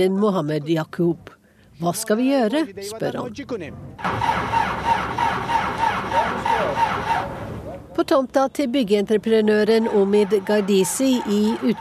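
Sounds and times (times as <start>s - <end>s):
speech: 0.0s - 5.5s, 8.0s - 11.7s
tractor engine cranking without catching: 4.0s - 7.8s, 9.6s - 11.7s.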